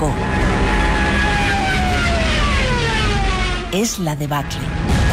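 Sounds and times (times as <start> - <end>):
Stuka dive bomber aircraft roaring overhead: 0.0 - 3.8
speech: 3.8 - 5.0.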